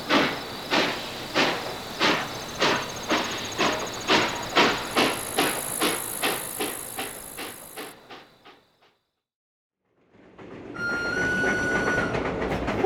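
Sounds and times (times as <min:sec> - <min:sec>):
train rolling along rails with clickety-clack and high whine: 0:00.0 - 0:09.0, 0:10.0 - 0:12.8
rumbling train with whistle-like tone: 0:10.7 - 0:12.8.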